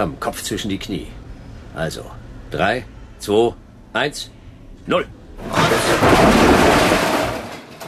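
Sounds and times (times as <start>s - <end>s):
speech: 0.0s - 1.2s, 1.8s - 6.3s
elevator grinding into a sudden emergency stop: 5.4s - 7.8s.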